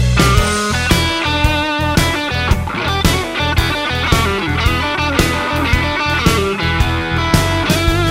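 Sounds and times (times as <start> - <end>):
roadhouse guitar licks: 0.1 - 8.0.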